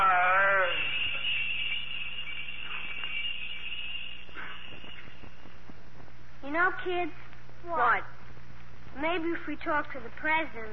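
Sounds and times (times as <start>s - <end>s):
bells ringing: 0.0s - 5.8s
speech: 6.7s - 8.2s, 9.0s - 10.7s.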